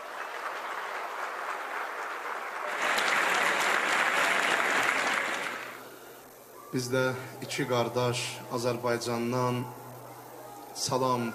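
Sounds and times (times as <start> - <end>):
audience applause at a religious celebration: 0.0 - 6.8
speech: 6.7 - 9.8, 10.8 - 11.3.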